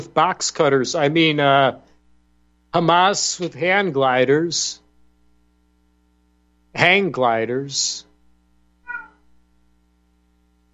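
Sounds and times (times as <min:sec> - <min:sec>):
speech: 0:00.0 - 0:01.9, 0:02.7 - 0:04.8, 0:06.8 - 0:08.1
steady low hum: 0:00.0 - 0:10.7
single cat meow: 0:08.8 - 0:09.3.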